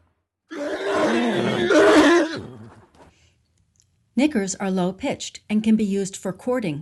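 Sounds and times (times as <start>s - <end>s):
horse squealing: 0.5s - 2.8s
speech: 4.2s - 6.7s.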